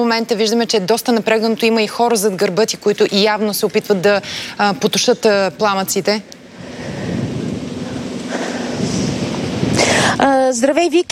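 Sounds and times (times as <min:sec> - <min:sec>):
speech: 0:00.0 - 0:07.0, 0:10.2 - 0:11.1
strong wind roaring at a wildfire in a holiday-home area above a town: 0:05.5 - 0:10.4.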